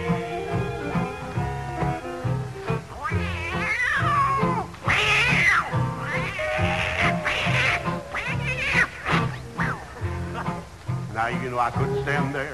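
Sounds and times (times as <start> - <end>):
old tomcat fighting, yowling and caterwauling: 0.0 - 10.0
musical backing: 0.0 - 12.5
speech: 11.3 - 12.5.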